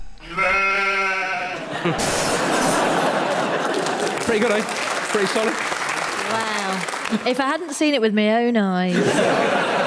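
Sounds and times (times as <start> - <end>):
person imitating sheep bleat: 0.2 - 1.6
laughter: 1.3 - 7.9, 8.9 - 9.8
speech: 1.8 - 2.2, 4.3 - 5.7, 6.3 - 9.8.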